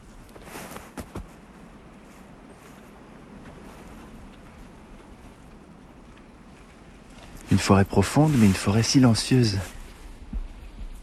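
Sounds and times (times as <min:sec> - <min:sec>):
wind through high treetops and pine needles: 0:00.0 - 0:11.0
faint clicks: 0:04.2 - 0:07.5
speech: 0:07.5 - 0:09.8.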